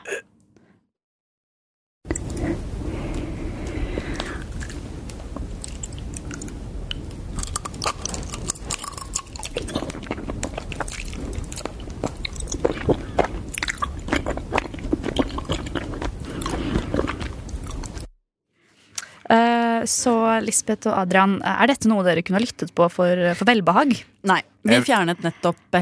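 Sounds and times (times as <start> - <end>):
girl chewing sticky honeycomb with wet sticky smacks: 3.1 - 18.1
crunchy bites of sticky honeycomb: 7.2 - 18.1
speech: 19.8 - 25.8.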